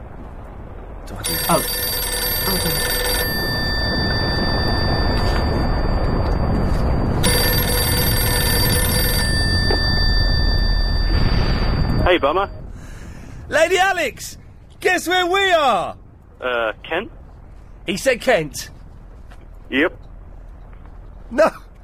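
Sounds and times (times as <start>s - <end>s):
constant rumbling noise: 0.0s - 21.8s
speech: 1.0s - 1.9s, 2.5s - 3.0s, 12.1s - 12.6s, 13.5s - 17.2s, 17.8s - 18.7s, 21.3s - 21.6s
telephone ringing: 1.1s - 12.6s.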